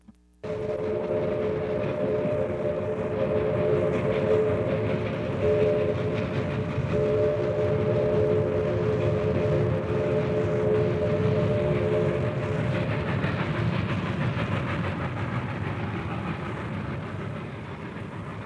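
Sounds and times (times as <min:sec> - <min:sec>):
sustained tonal whine of a train: 0:00.0 - 0:18.4
train rumbling along tracks: 0:00.4 - 0:18.4.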